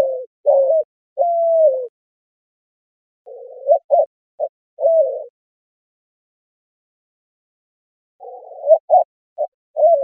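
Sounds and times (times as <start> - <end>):
White-winged dove cooing: 0.0 - 1.9, 3.2 - 5.3, 8.2 - 10.0.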